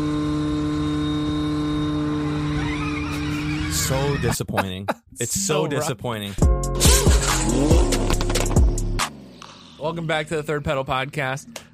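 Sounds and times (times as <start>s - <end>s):
Dakar Audi rally car with all-wheel drive driving with electric whine: 0.0s - 4.2s, 7.3s - 11.7s
laughter: 3.1s - 6.3s
speech: 3.8s - 8.2s, 9.8s - 11.7s.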